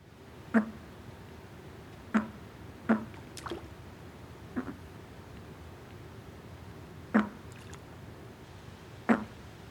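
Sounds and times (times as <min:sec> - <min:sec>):
bullfrog encounter calls: 0:04.5 - 0:04.8, 0:07.1 - 0:07.4, 0:09.1 - 0:09.3.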